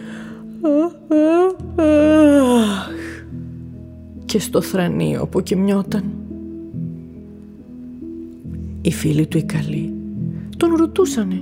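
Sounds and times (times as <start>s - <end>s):
speech: 0.6s - 1.2s, 4.3s - 6.2s, 8.9s - 9.9s, 10.7s - 11.3s
person yawning: 0.6s - 3.3s.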